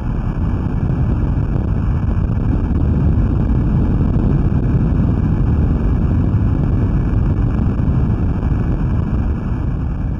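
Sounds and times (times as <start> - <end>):
underwater earthquake rumble off the coast of Japan picked up by a Navy listening station: 0.0 - 10.1.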